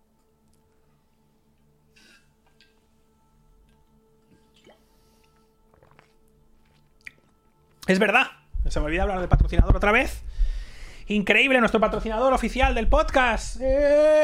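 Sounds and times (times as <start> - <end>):
faint steady hum: 0.0 - 14.2
person sipping a shot of water: 3.7 - 7.4
speech: 7.9 - 10.3, 11.1 - 14.2.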